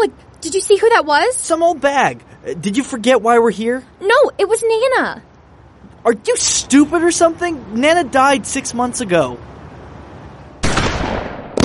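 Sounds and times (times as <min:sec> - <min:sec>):
speech: 0:00.0 - 0:05.3, 0:06.0 - 0:09.5
gunshots: 0:10.6 - 0:11.6.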